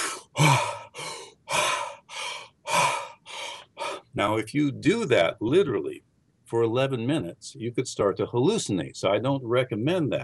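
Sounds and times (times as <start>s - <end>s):
rapid deep breathing in deliberate hyperventilation: 0.0s - 4.2s
speech: 4.2s - 10.2s.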